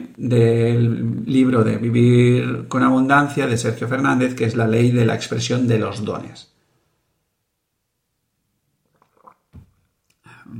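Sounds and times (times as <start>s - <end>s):
speech: 0.2s - 6.5s
wet mouth sound: 8.8s - 10.5s
gulping and swallowing: 8.9s - 9.7s
sipping water: 8.9s - 10.5s.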